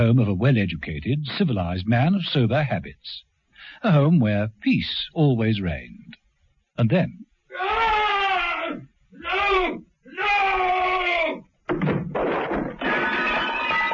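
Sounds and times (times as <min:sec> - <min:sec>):
speech: 0:00.0 - 0:06.2, 0:06.8 - 0:07.8
loud drawn-out scream: 0:07.5 - 0:11.5
abrupt crash: 0:11.7 - 0:13.9.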